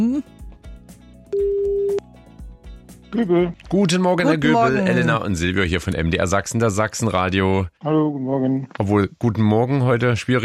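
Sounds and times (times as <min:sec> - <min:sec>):
speech: 0:00.0 - 0:00.3, 0:03.1 - 0:10.4
quiet rhythmic bed: 0:00.0 - 0:07.0
outgoing call ringback tone: 0:01.3 - 0:02.0.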